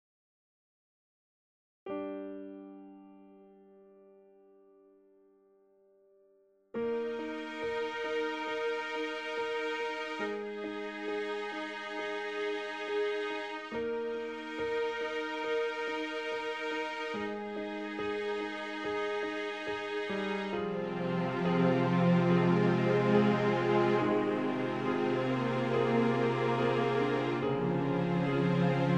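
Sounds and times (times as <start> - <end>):
piano: 1.9 - 28.9
strings: 6.8 - 28.9.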